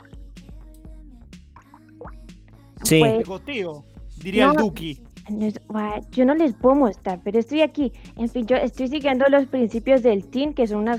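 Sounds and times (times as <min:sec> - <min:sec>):
water dripping and splashing in a filled bathtub: 0:01.6 - 0:02.3
speech: 0:02.8 - 0:10.9.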